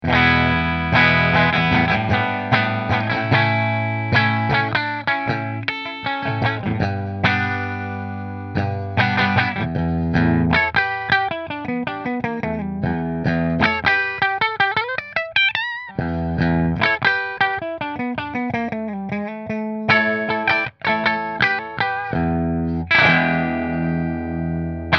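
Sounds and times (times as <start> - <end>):
Fender electric guitars playing: 0.0 - 24.9.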